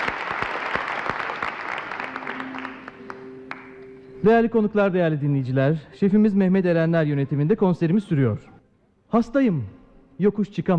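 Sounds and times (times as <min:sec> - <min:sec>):
concert audience applauding a Black Sea folk dance group: 0:00.0 - 0:03.8
speech: 0:04.2 - 0:08.5, 0:09.1 - 0:10.7.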